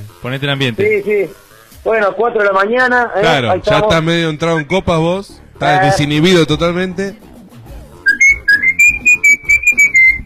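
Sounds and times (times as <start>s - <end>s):
speech: 0.2s - 7.3s
person whistling a quick lively tune: 8.0s - 10.2s.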